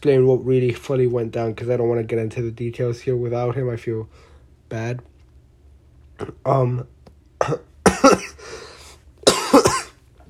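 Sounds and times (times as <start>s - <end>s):
speech: 0.0s - 5.1s, 6.2s - 7.7s
throat-clearing rasp: 6.2s - 6.6s, 7.4s - 8.4s, 9.3s - 9.9s
harsh coughs: 7.4s - 8.6s, 9.2s - 10.0s.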